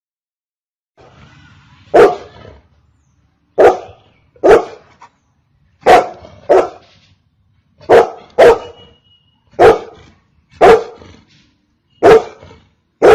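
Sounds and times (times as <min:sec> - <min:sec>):
golden retriever barking: 0:01.9 - 0:02.4, 0:03.6 - 0:04.9, 0:05.8 - 0:06.9, 0:07.8 - 0:08.9, 0:09.5 - 0:11.0, 0:12.0 - 0:13.1.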